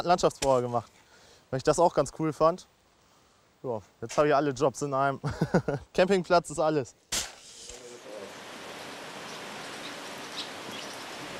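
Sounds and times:
speech: 0.0 - 2.8, 3.6 - 7.1
heavy rain falling: 8.0 - 11.3.

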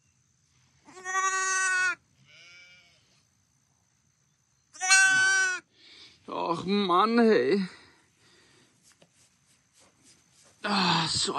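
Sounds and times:
injured lamb bleating: 0.9 - 3.0, 4.8 - 5.6
speech: 6.6 - 7.8.

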